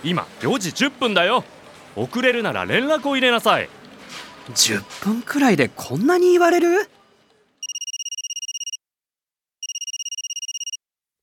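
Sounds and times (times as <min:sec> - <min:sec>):
speech: 0:00.0 - 0:03.8, 0:04.5 - 0:07.0
telephone ringing with a warbling trill: 0:07.6 - 0:08.8, 0:09.6 - 0:10.8.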